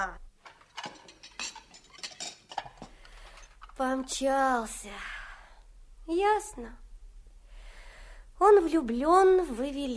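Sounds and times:
dishes and cutlery clinking and clattering: 0:00.4 - 0:03.8
speech: 0:03.8 - 0:05.2, 0:06.1 - 0:06.8, 0:08.4 - 0:09.9.

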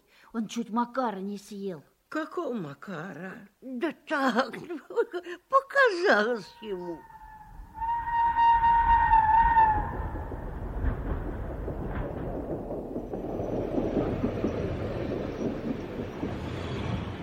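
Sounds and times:
speech: 0:00.3 - 0:07.1
train horn: 0:06.7 - 0:10.3
train rumbling and clattering pulling in to a station: 0:07.8 - 0:17.2.

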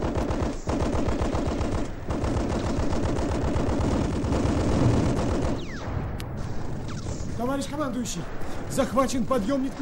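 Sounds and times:
machine gun covering fire: 0:00.0 - 0:07.2
speech: 0:07.6 - 0:09.8.

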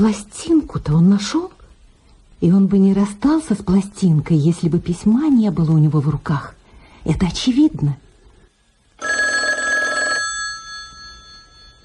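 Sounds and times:
speech: 0:00.0 - 0:01.6, 0:02.4 - 0:08.0
old-style telephone bell ringing: 0:09.0 - 0:11.8.

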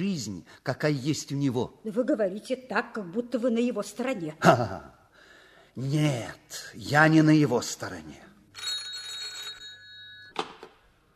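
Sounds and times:
speech: 0:00.0 - 0:05.0, 0:05.8 - 0:08.3
telephone bell ringing with a metallic trill: 0:08.5 - 0:10.4.

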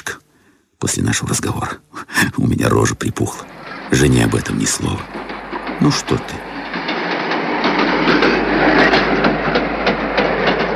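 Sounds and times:
speech: 0:00.8 - 0:06.5
train rumble: 0:02.1 - 0:10.7
train wheels clattering over rail joints: 0:03.2 - 0:10.7.

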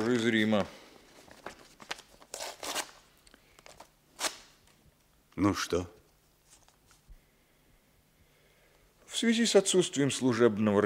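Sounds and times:
speech: 0:00.0 - 0:00.8, 0:05.4 - 0:06.0, 0:09.2 - 0:10.8
paper envelope from Rome being ripped open: 0:01.8 - 0:03.0.

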